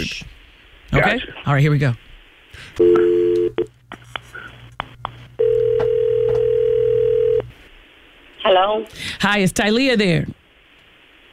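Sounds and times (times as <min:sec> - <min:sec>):
speech: 0:00.9 - 0:03.8, 0:08.4 - 0:10.4
telephone ringing tone: 0:02.8 - 0:03.6, 0:05.4 - 0:07.5.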